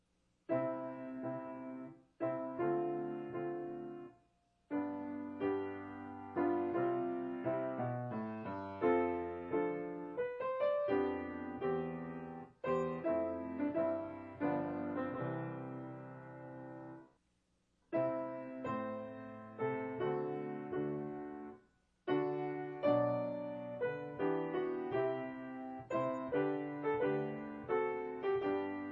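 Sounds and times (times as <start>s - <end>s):
larghetto piano piece: 0.5s - 17.1s, 17.9s - 28.9s.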